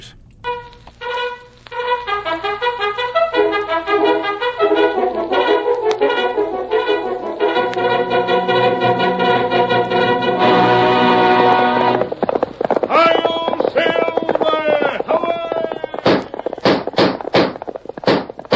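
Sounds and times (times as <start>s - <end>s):
galloping horse hoofbeats: 0.4s - 18.5s
sharp heavy thuds: 12.2s - 18.5s
dramatic announcer's voice in an old-time radio drama: 12.9s - 16.2s.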